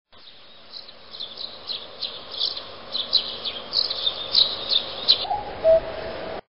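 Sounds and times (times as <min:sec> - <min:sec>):
birds singing in the forest: 0:00.2 - 0:05.9.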